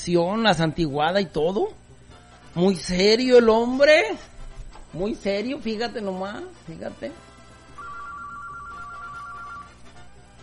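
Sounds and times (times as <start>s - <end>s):
speech: 0.0s - 1.8s, 2.6s - 4.3s, 4.9s - 7.3s
telephone ringing at a radio station: 7.6s - 10.0s.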